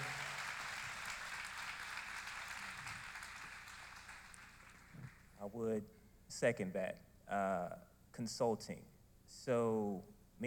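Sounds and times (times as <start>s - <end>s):
room full of people clapping: 0.0s - 5.4s
speech: 5.4s - 10.4s.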